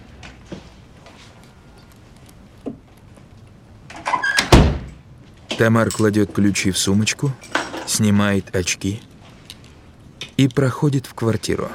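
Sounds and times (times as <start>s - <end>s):
front door being shut from inside an entrance hallway: 3.9s - 5.7s
speech: 5.6s - 9.1s, 10.4s - 11.7s.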